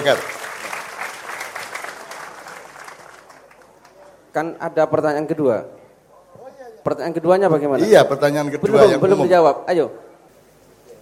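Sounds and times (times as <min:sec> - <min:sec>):
speech: 0:00.0 - 0:00.4, 0:04.4 - 0:05.8, 0:06.8 - 0:10.1
audience applause at a question-and-answer session on Islamic teaching: 0:00.0 - 0:04.3.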